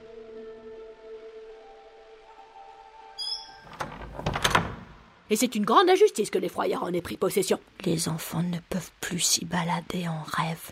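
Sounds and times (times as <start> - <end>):
door slowly swinging open with a long wavering creak: 3.2 - 5.1
rattling and knocking: 3.7 - 5.0
speech: 5.3 - 10.6.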